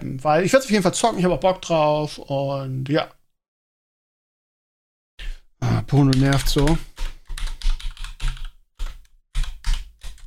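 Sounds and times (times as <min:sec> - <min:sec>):
speech: 0:00.2 - 0:03.2, 0:05.9 - 0:06.9
typing a message on a computer keyboard: 0:06.0 - 0:10.2.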